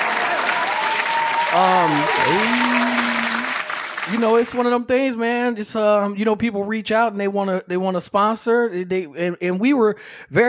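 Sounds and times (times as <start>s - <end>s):
person cheering or whooping: 0.0s - 3.7s
dense steady crowd applause: 0.0s - 4.5s
speech: 1.5s - 2.9s, 4.1s - 10.4s.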